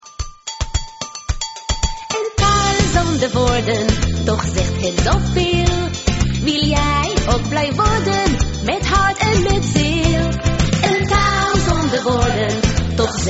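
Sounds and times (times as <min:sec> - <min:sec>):
music: 0:00.0 - 0:13.2.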